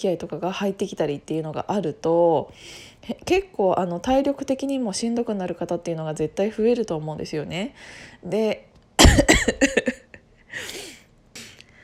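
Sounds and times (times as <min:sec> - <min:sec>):
speech: 0:00.0 - 0:10.0
person with a cold and strained vocal cords coughing: 0:09.0 - 0:11.6
raspy wheezing breaths drawn in: 0:10.5 - 0:11.8.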